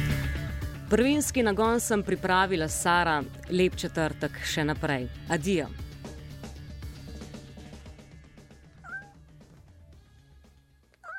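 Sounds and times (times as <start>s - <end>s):
steady music: 0.0s - 11.1s
speech: 0.9s - 5.8s
cat meowing: 8.8s - 9.2s, 11.0s - 11.1s.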